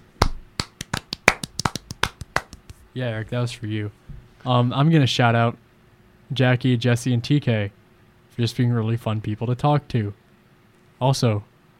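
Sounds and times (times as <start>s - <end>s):
hand clapping from a small group: 0.2s - 2.8s
speech: 2.9s - 5.6s, 6.3s - 7.8s, 8.4s - 10.2s, 11.0s - 11.5s.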